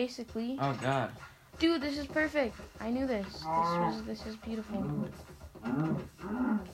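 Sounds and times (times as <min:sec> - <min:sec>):
speech: 0:00.0 - 0:06.7
video game cow being killed mooing: 0:03.4 - 0:04.0, 0:05.6 - 0:06.7.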